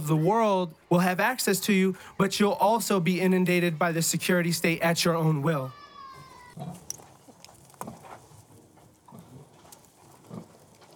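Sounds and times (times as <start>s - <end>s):
barnyard background: 0.0s - 10.9s
speech: 0.1s - 5.8s, 6.6s - 6.8s
pigs grunting and snuffling while eating slop at a trough: 6.6s - 10.9s.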